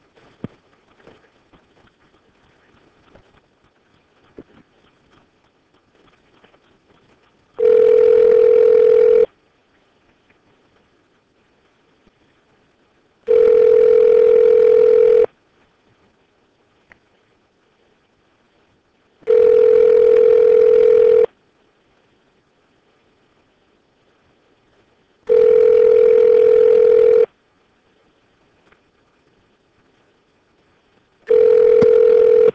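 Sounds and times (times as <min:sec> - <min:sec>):
faint noise: 0:00.0 - 0:32.5
telephone dial tone while dialing a call: 0:07.6 - 0:09.3, 0:13.3 - 0:15.3, 0:19.2 - 0:21.3, 0:25.3 - 0:27.3, 0:31.3 - 0:32.5.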